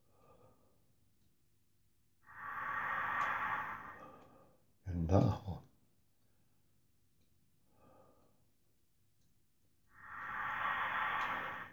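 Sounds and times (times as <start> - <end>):
long deep breath into belly and chest: 2.2 - 4.7, 7.7 - 8.5, 9.9 - 11.7
speech: 5.1 - 5.5.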